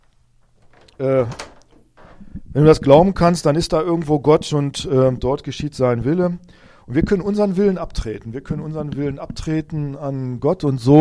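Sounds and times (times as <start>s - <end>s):
door hinge creak: 0.0s - 2.4s
door latch click: 0.6s - 1.9s
speech: 1.0s - 1.5s, 2.6s - 11.0s.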